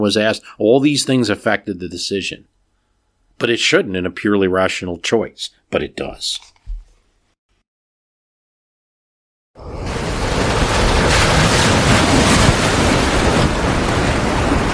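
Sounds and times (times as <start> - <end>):
speech: 0.0 - 2.6, 3.4 - 6.5
howling wind: 9.6 - 14.7
stormy ocean waves: 9.6 - 14.7.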